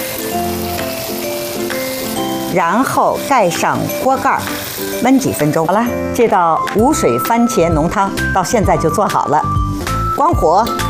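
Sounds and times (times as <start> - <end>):
shrimp coated in tapioca starch frying in a pan: 0.0 - 10.8
speech: 2.6 - 9.6, 10.2 - 10.8.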